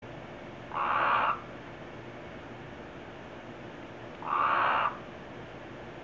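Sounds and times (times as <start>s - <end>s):
Colorado River Toad Incilius alvarius mating call: 0.7s - 1.4s, 4.2s - 5.0s.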